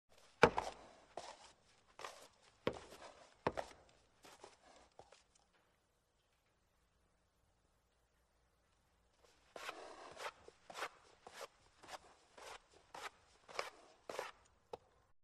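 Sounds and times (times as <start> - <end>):
wildlife footsteps pawing dirt: 0.1 - 5.3, 9.3 - 14.4.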